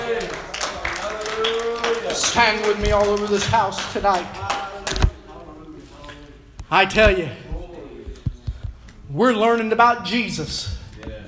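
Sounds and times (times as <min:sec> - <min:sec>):
crowd applauding: 0:00.0 - 0:05.1
speech: 0:02.2 - 0:04.5, 0:06.7 - 0:07.4, 0:09.1 - 0:10.8.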